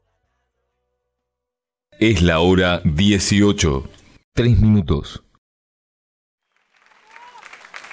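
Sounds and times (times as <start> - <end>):
speech: 2.0 - 5.2
audience applause at a live music performance: 6.4 - 7.9.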